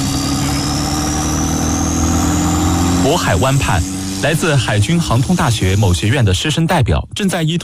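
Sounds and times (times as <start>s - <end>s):
military aircraft engine running up for takeoff: 0.0s - 6.4s
speech: 3.1s - 7.6s.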